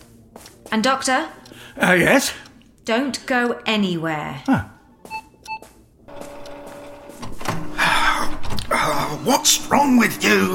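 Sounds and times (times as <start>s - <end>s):
speech: 0.4s - 4.7s, 9.2s - 10.5s
printer beeping in short tones: 5.1s - 7.3s
printer whirring with a steady mechanical hum: 6.1s - 8.1s.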